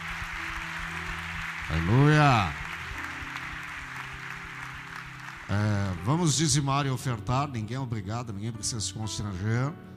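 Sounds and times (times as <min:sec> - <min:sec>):
audience applauding at a church service: 0:00.0 - 0:06.7
speech: 0:01.7 - 0:02.6, 0:05.5 - 0:09.9.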